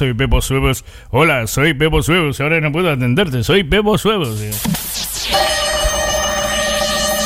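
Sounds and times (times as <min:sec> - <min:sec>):
speech: 0:00.0 - 0:05.4
telephone ringing: 0:05.4 - 0:07.2.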